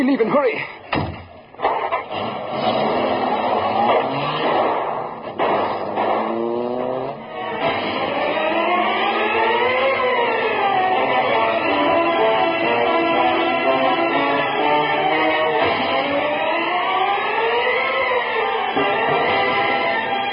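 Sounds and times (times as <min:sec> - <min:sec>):
speech: 0:00.0 - 0:00.9
car door thudding shut: 0:00.9 - 0:01.4
car engine starting and revving as the car accelerates away: 0:01.6 - 0:20.2.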